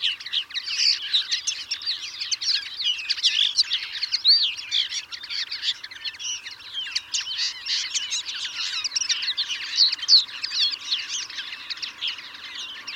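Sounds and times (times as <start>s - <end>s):
European greenfinch twittering: 0.0s - 12.9s.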